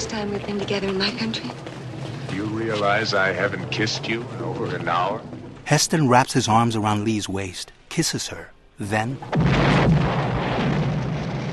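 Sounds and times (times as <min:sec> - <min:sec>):
speech: 0:00.1 - 0:01.7, 0:02.3 - 0:10.2
Cadillac car exploding in a film scene: 0:09.2 - 0:11.5.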